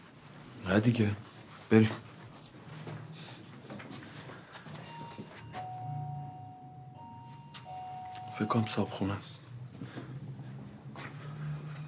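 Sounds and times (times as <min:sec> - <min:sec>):
faint indoor hum: 0:00.0 - 0:11.8
speech: 0:00.7 - 0:02.1, 0:08.4 - 0:09.9
electronic door intercom buzzer: 0:04.9 - 0:09.1.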